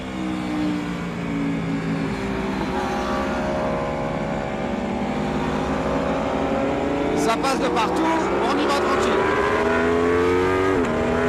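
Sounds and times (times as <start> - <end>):
Aprilia V4 motorcycle engine on a race circuit: 0.0 - 11.2
speech: 7.3 - 9.2.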